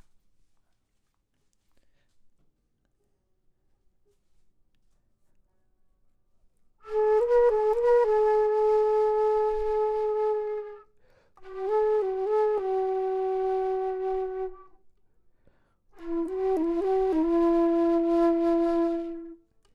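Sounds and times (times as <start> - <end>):
low flute: 6.8 - 14.9, 15.9 - 19.5.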